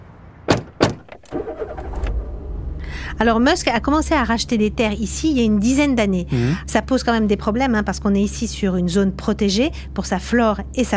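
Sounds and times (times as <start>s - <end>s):
car doors closing: 0.5s - 2.8s
car engine starting and rumbling: 0.8s - 10.9s
speech: 3.2s - 10.9s.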